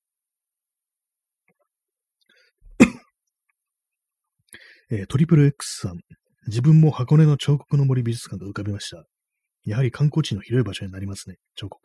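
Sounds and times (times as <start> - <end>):
person coughing with a throaty rasp: 2.7 - 3.1
throat clearing: 2.7 - 3.1
speech: 4.9 - 11.8.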